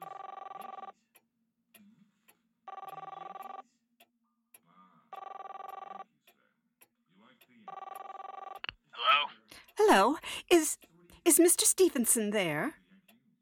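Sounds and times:
telephone ringback tone heard down the line: 0:00.0 - 0:00.9, 0:02.7 - 0:03.6, 0:05.2 - 0:06.0, 0:07.7 - 0:08.6
speech: 0:09.9 - 0:12.8.

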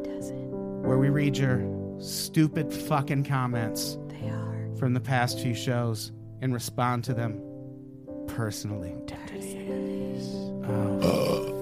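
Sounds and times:
speech: 0:00.3 - 0:07.5, 0:08.4 - 0:11.2
long low throaty burp: 0:10.6 - 0:11.6.

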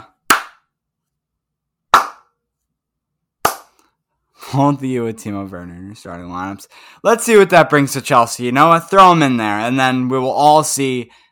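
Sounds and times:
sharp isolated hand claps: 0:00.0 - 0:00.7, 0:01.9 - 0:02.3, 0:03.4 - 0:03.8
speech: 0:04.5 - 0:11.2.

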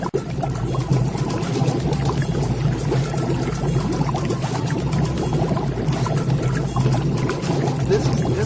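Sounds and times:
water boiling in a video game cooking scene: 0:00.0 - 0:08.4.

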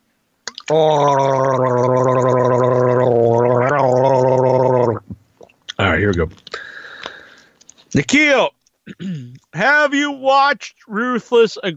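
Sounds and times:
person gargling seltzer: 0:00.5 - 0:06.0
speech: 0:00.7 - 0:02.4, 0:08.0 - 0:08.5, 0:09.6 - 0:11.7.

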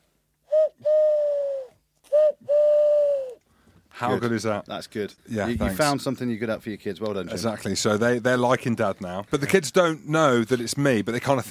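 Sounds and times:
man imitating an owl hoot: 0:00.5 - 0:03.4
speech: 0:04.0 - 0:11.5.

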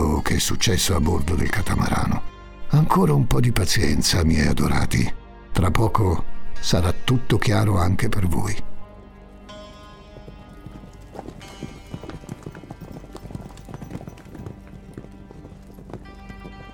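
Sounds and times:
speech: 0:00.4 - 0:08.7
hum: 0:08.9 - 0:16.7
horses' hooves clip-clopping at a brisk pace: 0:09.0 - 0:16.7.

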